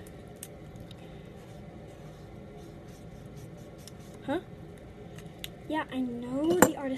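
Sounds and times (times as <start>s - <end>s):
pencil scratching on paper while drawing: 1.4s - 4.2s
speech: 4.2s - 4.6s, 5.7s - 6.9s.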